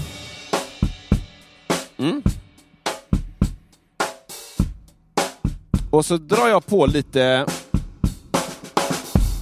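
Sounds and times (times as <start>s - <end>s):
drum kit playing a steady punchy beat through single close microphone: 0.0s - 9.4s
brief murmur from a voice: 2.0s - 2.4s
speech: 2.0s - 2.4s, 6.0s - 7.6s.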